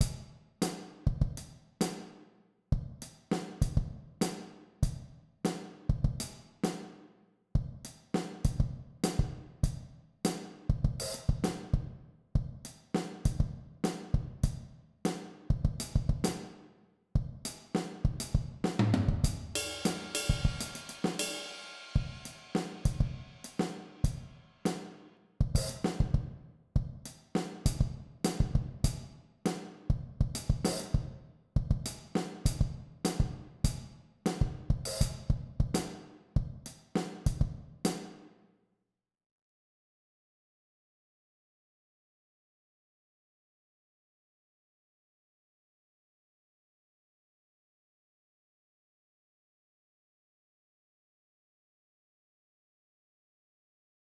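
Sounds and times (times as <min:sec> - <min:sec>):
syncopated funk drumming on a drum set: 0:00.0 - 0:02.2, 0:02.8 - 0:07.0, 0:07.6 - 0:16.6, 0:17.3 - 0:38.3.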